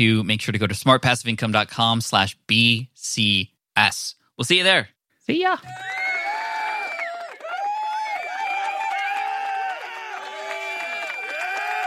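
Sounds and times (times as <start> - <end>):
speech: 0.0 - 5.9
large crowd applauding: 5.7 - 11.8.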